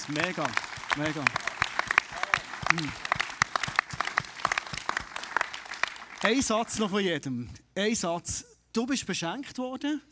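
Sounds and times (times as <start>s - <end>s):
small audience applauding: 0.0s - 6.5s
speech: 0.1s - 1.5s, 2.7s - 3.1s, 6.2s - 10.1s.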